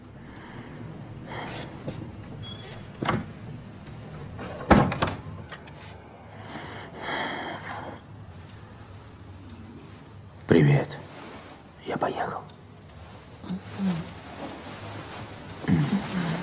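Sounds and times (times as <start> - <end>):
soft breathy sounds: 0.2 - 2.1, 5.8 - 10.3, 12.4 - 16.4
bedroom door in a home being shut: 4.4 - 5.2
faint rustling: 8.3 - 16.4.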